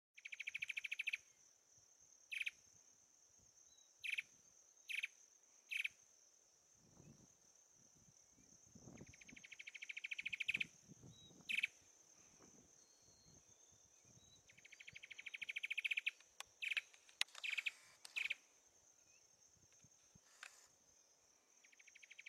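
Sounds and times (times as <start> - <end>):
papa formiga do sincora singing: 0.2 - 1.4, 2.3 - 2.6, 3.7 - 6.0, 9.0 - 19.4, 21.6 - 22.2.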